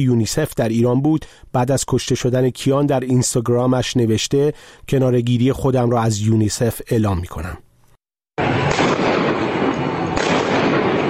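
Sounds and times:
speech: 0:00.0 - 0:07.7, 0:08.4 - 0:08.7
gunfire in a street in Iran: 0:08.4 - 0:11.0.

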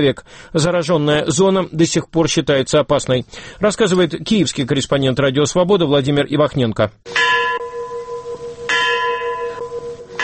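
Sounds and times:
speech: 0:00.0 - 0:07.2
large memorial bell tolling at the Chernobyl memorial mound in Kyiv at night: 0:07.1 - 0:10.2.

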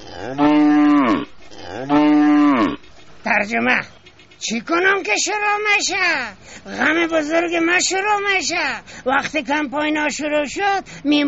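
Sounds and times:
cow mooing: 0:00.0 - 0:02.8
speech: 0:00.2 - 0:00.5, 0:03.4 - 0:11.2.

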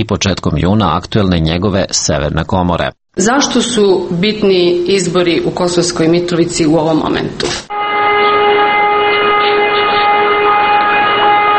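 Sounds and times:
speech: 0:00.0 - 0:07.8
siren wailing above a town: 0:07.7 - 0:11.5.

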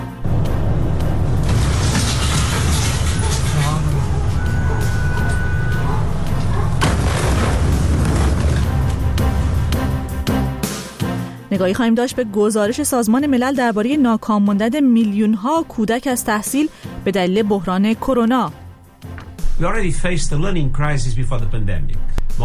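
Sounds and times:
large explosion in Beirut Lebanon roaring: 0:00.2 - 0:10.4
speech: 0:11.6 - 0:18.6, 0:19.6 - 0:22.4.

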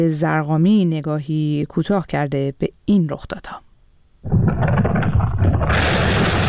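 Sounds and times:
speech: 0:00.0 - 0:06.0
loud explosion boom: 0:04.3 - 0:06.4
sustained rumbling roar with broadband noise: 0:04.3 - 0:06.4.

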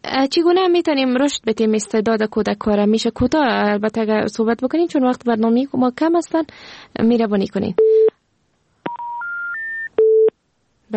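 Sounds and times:
speech: 0:00.2 - 0:08.1
lower steady tone on a telephone line: 0:07.8 - 0:08.2, 0:08.9 - 0:10.4
three rising electronic tones on a telephone line after a call drops: 0:08.9 - 0:10.4.

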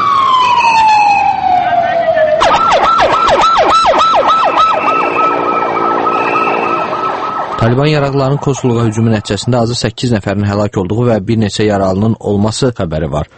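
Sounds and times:
ambulance sirens after a militant attack: 0:00.0 - 0:10.0
speech: 0:07.6 - 0:13.3.

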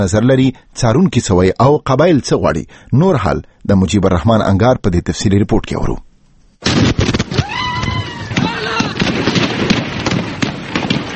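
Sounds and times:
speech: 0:00.0 - 0:07.0
gunshots from a deadly 2010 attack in Khyber Pakhtunkhwa: 0:06.6 - 0:07.5, 0:08.2 - 0:11.1
people shouting: 0:07.3 - 0:09.2.

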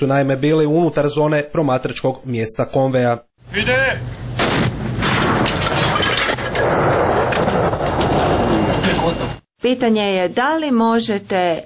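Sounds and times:
speech: 0:00.0 - 0:04.2, 0:08.9 - 0:11.6
120 mm mortar being fired: 0:04.4 - 0:08.8.

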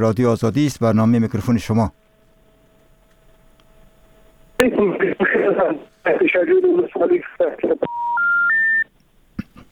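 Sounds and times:
speech: 0:00.0 - 0:02.0, 0:04.6 - 0:08.2
voice talking over a phone line: 0:04.6 - 0:08.0.

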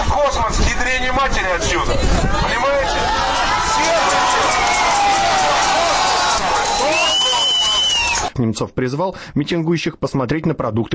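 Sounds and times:
speech: 0:00.3 - 0:03.2, 0:08.4 - 0:10.9
large agitated crowd of protesters shouting at a rally in Russia: 0:01.6 - 0:08.3
raised yells of protesters: 0:02.3 - 0:08.3.

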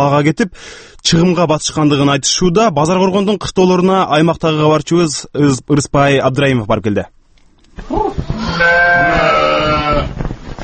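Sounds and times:
speech: 0:00.0 - 0:07.2, 0:07.8 - 0:09.2
sheep bleating in a village livestock yard: 0:07.8 - 0:10.2.

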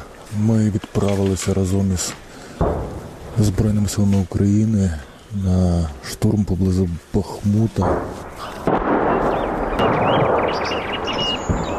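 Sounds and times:
speech: 0:00.3 - 0:02.2, 0:03.4 - 0:08.6
artillery fire booming during a preparatory bombardment before an assault near Bakhmut: 0:02.6 - 0:03.7, 0:07.8 - 0:11.7
faint bird chirps: 0:09.1 - 0:11.7.

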